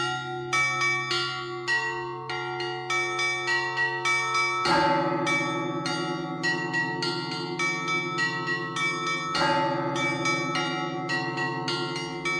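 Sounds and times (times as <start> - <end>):
rapid clanging small Russian Orthodox monastery church bells: 0.0 - 12.3
deep heavy Russian Orthodox monastery church bell struck: 4.7 - 12.3.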